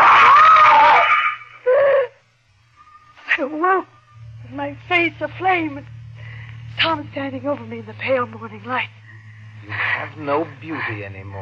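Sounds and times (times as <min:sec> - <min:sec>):
woman screaming in terror: 0:00.0 - 0:02.1
speech: 0:05.0 - 0:06.0, 0:06.8 - 0:09.0, 0:09.6 - 0:11.4.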